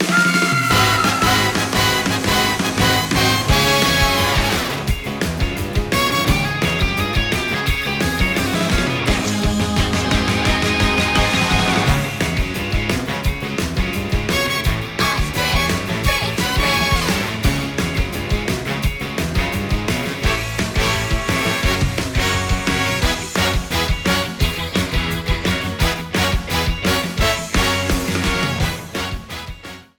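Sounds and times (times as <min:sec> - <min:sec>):
instrumental music: 0:00.0 - 0:29.9.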